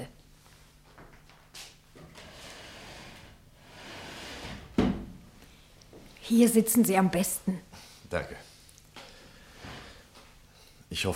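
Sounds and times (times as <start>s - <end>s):
wooden chair scraping and shuffling across a floor: 2.0s - 5.0s, 9.4s - 10.2s
wooden chair knocking as it is set down: 4.3s - 5.2s
speech: 6.3s - 8.5s, 10.9s - 11.1s.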